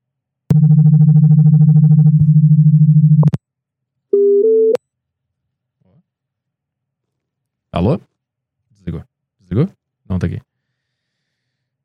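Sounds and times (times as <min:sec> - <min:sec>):
loud buzzy rapidly pulsing low telephone call tone: 0:00.5 - 0:03.3
speech: 0:07.8 - 0:08.1, 0:09.6 - 0:10.5.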